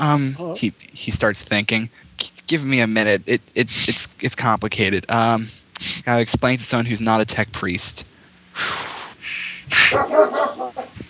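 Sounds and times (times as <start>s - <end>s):
speech: 0.0s - 8.9s, 9.7s - 11.0s
person imitating dog barking and whining: 0.3s - 0.8s, 9.7s - 11.0s.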